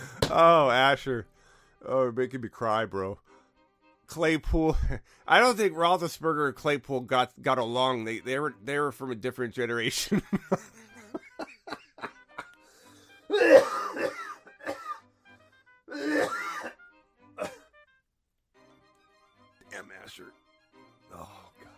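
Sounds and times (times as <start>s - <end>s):
breaths: 0.0s - 0.2s, 1.3s - 1.8s, 3.2s - 3.6s, 5.0s - 5.3s, 12.6s - 13.2s
speech: 0.3s - 3.3s, 4.1s - 10.8s
laughter: 10.0s - 12.6s
man clearing his throat: 13.3s - 15.0s, 15.9s - 16.8s, 17.4s - 17.7s
man coughing: 13.3s - 15.0s, 15.9s - 16.8s, 17.4s - 17.7s.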